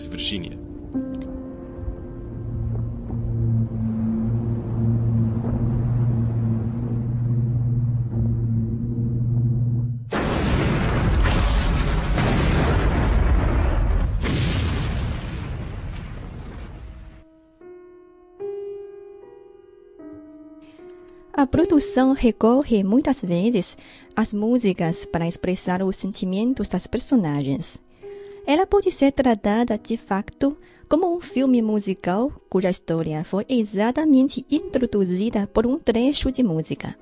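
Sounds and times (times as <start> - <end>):
speech: 0.0 - 1.1, 21.5 - 27.8, 28.5 - 36.9
quiet music: 0.0 - 10.1, 17.2 - 36.9
sustained orchestral tones: 0.0 - 10.1
long roaring rumble: 1.4 - 16.7
huge ship explosion with echoing booms: 10.1 - 17.2.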